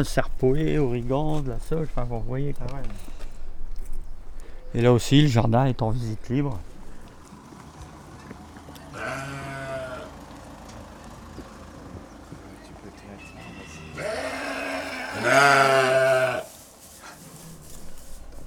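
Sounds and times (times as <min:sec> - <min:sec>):
speech: 0:00.0 - 0:03.2, 0:04.7 - 0:06.7, 0:15.2 - 0:15.9
faint outdoor background: 0:00.0 - 0:18.4
sheep bleating on a farm: 0:08.8 - 0:10.3, 0:13.4 - 0:16.5.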